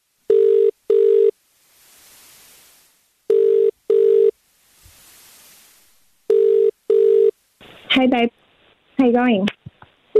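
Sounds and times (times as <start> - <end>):
faint hiss on the phone line: 0.0 - 10.1
double-pulse phone ringback tones: 0.3 - 1.3, 3.3 - 4.3, 6.3 - 7.4
speech: 7.9 - 8.4, 9.0 - 9.5.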